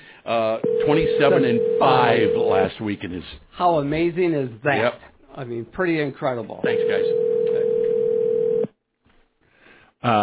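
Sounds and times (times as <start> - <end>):
speech: 0.3 - 7.2
telephone dial tone: 0.6 - 2.5, 6.8 - 8.7.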